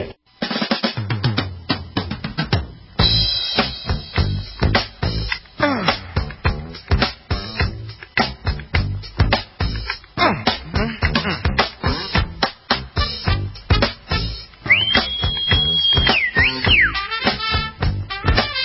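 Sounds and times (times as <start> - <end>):
busy percussive music: 0.6 - 18.6
person whistling a short sliding melody: 14.6 - 17.1.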